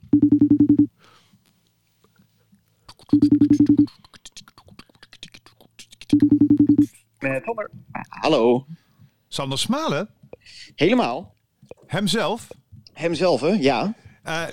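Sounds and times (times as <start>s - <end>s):
phone ringback tone before answer: 0.0s - 0.9s, 3.2s - 3.9s, 6.2s - 6.9s
speech: 0.1s - 0.5s, 7.3s - 8.7s, 9.4s - 11.3s, 11.9s - 14.5s.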